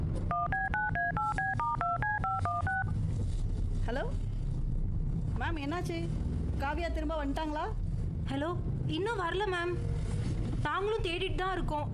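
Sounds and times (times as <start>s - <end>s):
low hum: 0.0s - 11.9s
telephone keypad dialing tones: 0.3s - 2.9s
speech: 5.5s - 9.9s, 10.6s - 11.9s.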